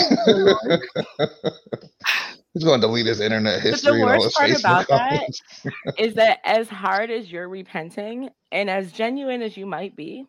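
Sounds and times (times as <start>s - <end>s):
person acting out a hacking cough: 0.0s - 1.7s, 3.7s - 6.0s
laughter: 0.0s - 6.1s
speech: 0.2s - 1.9s, 2.6s - 10.2s.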